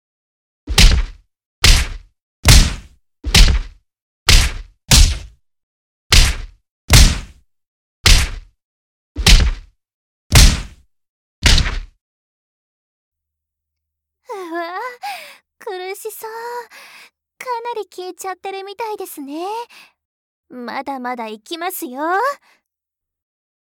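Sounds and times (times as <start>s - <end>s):
fist punches thrown as alternating left and right hooks: 0.7s - 5.4s, 6.1s - 7.4s, 8.0s - 8.6s, 9.2s - 10.8s, 11.4s - 12.0s
speech: 14.3s - 19.9s, 20.5s - 22.6s.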